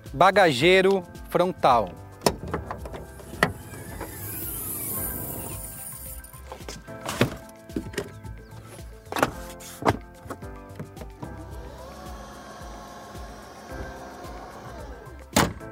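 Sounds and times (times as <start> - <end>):
speech: 0.1 - 2.0
mechanical clicks and thumps from tailgate latch and hinges: 2.2 - 4.2, 6.6 - 11.3, 15.3 - 15.7
car power tailgate electric motor whirring: 2.6 - 6.0.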